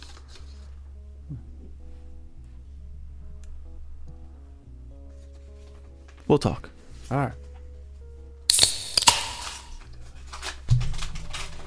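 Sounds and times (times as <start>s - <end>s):
paper crinkling and creasing while folded into a paper airplane: 0.0s - 0.7s, 10.0s - 11.6s
speech: 6.3s - 7.4s.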